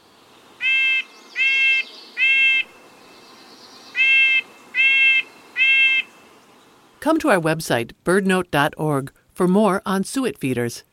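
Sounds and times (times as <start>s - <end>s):
faint outdoor background: 0.0s - 10.9s
harsh raspy jay calls: 0.6s - 2.8s, 3.9s - 6.2s
speech: 7.0s - 10.9s.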